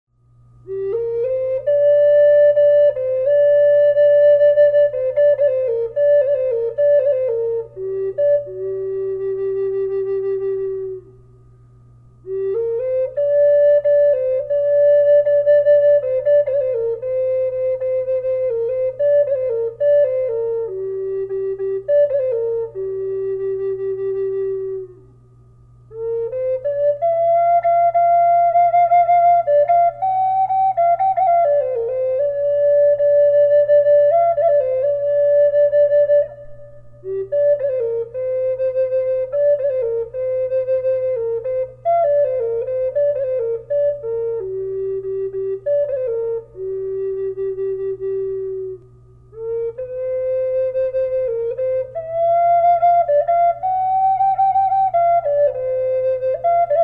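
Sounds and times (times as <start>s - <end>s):
flute with reverb in G minor: 0.6s - 11.2s, 12.2s - 56.8s.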